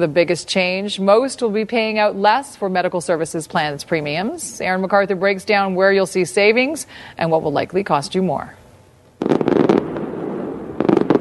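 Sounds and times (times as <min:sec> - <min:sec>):
speech: 0:00.0 - 0:08.6
New Year's Eve fireworks exploding: 0:09.2 - 0:11.1.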